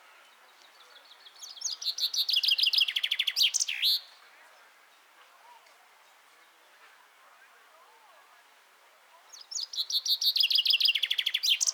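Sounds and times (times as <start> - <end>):
Common chaffinch Fringilla coelebs singing: 0.6 - 4.1, 9.3 - 11.7.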